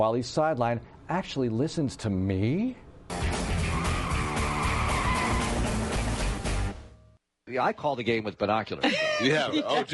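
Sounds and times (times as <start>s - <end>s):
speech: 0.0s - 3.2s, 7.5s - 9.9s
loud car brake screech with harsh tire squeal: 3.6s - 5.7s
laughter: 8.8s - 9.9s.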